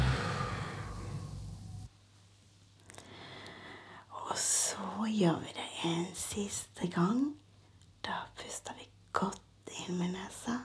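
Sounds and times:
person breathing in through nose and out through mouth during a breathing exercise: 0.0s - 1.9s, 2.9s - 4.1s
speech: 5.1s - 7.4s, 8.0s - 10.6s.

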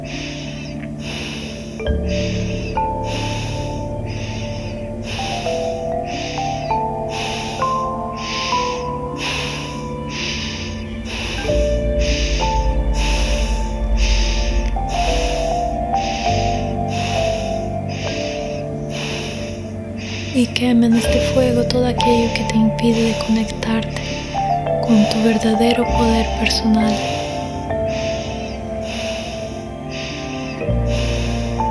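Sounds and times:
rhythmic quick sharp breaths in meditation: 0.0s - 20.6s, 27.0s - 31.6s
low drone: 0.0s - 31.6s
sustained musical tones: 0.0s - 31.6s
speech: 20.6s - 24.2s, 24.9s - 27.2s.

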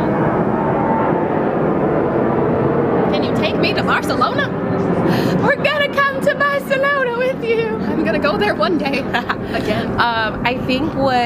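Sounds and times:
airplane passing overhead: 0.0s - 11.2s
speech: 3.4s - 11.2s.

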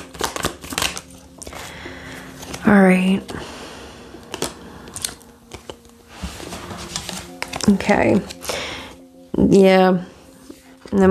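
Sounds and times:
tarot cards riffling and slapping as shuffled: 0.0s - 1.7s, 4.2s - 8.6s
tarot deck rustling as handled: 0.0s - 3.4s, 4.2s - 8.8s
speech: 2.7s - 3.6s, 7.7s - 8.4s, 9.5s - 10.1s.

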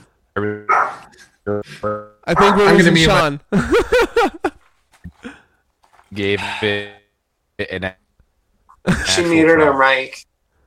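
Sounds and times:
speech: 0.4s - 4.4s, 6.2s - 7.0s, 7.6s - 8.0s, 8.8s - 10.3s
dog barking: 0.7s - 1.1s, 2.4s - 2.7s
laughter: 3.5s - 4.7s, 8.9s - 9.3s.

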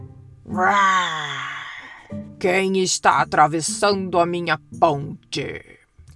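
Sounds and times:
speech: 0.5s - 1.4s, 2.4s - 5.8s
person roaring imitating a troll: 0.5s - 2.1s.

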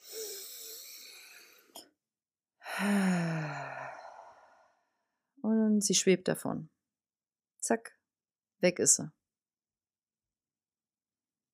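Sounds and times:
deep inhale during a guided breathing exercise: 0.0s - 1.8s, 2.6s - 5.1s
long loud exhale with a voiced sigh during a breathing exercise: 0.0s - 1.8s, 2.6s - 4.9s
speech: 2.8s - 3.2s, 5.8s - 6.8s, 7.7s - 8.0s, 8.6s - 9.2s.

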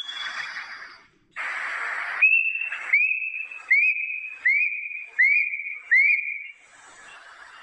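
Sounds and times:
Plaintive cuckoo calling with clear whistled notes: 0.0s - 1.1s, 2.1s - 6.6s
burst of hissing noise: 1.3s - 4.5s, 6.5s - 7.6s.

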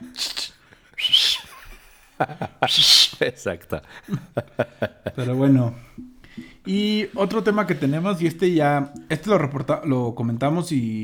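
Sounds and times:
person whistling: 0.0s - 1.7s, 2.6s - 3.2s
laughter: 0.2s - 6.4s
speech: 2.2s - 11.0s.

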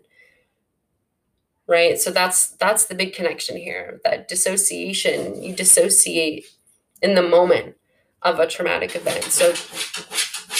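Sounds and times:
speech: 1.7s - 10.3s
dog scratching at a wooden door: 8.9s - 10.5s.

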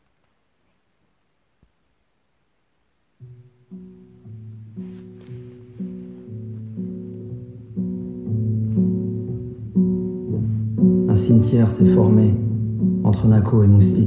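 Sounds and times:
slow song with sustained melody over low accompaniment: 3.1s - 14.0s
speech: 11.4s - 12.4s, 13.0s - 14.0s.

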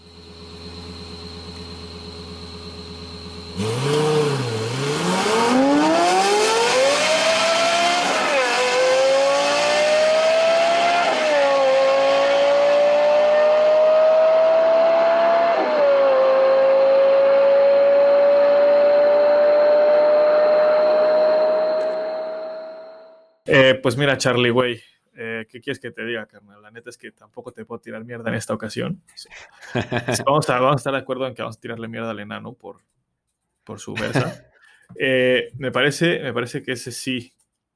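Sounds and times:
Toyota sports car engine revving through gear shifts: 0.1s - 22.6s
speech: 3.6s - 4.0s, 23.8s - 24.9s, 25.5s - 32.9s, 33.6s - 37.4s
laughter: 29.5s - 30.5s, 33.9s - 34.4s.

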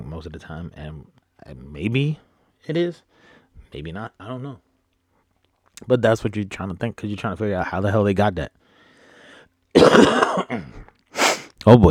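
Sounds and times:
speech: 0.2s - 4.7s, 5.8s - 8.6s, 9.8s - 10.9s, 11.6s - 11.9s
person clearing throat: 9.8s - 11.5s
person coughing in a harsh raspy fit: 9.8s - 11.5s.

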